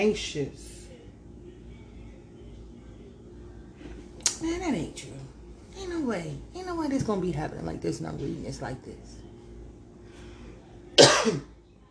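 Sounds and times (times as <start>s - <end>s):
speech: 0.0s - 0.8s, 4.4s - 5.2s, 5.8s - 9.2s, 11.0s - 11.5s
harsh raspy throat clearing: 11.0s - 11.5s.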